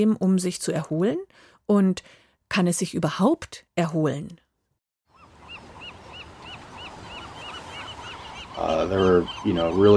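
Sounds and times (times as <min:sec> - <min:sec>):
speech: 0:00.0 - 0:04.4, 0:08.6 - 0:09.9
harsh honking pelican calls: 0:05.1 - 0:09.9.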